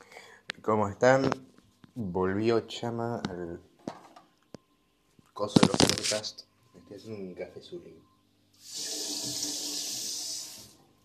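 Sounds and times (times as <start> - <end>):
speech: 0.6 - 3.7, 5.4 - 9.5
tap water running into a sink: 9.0 - 9.7.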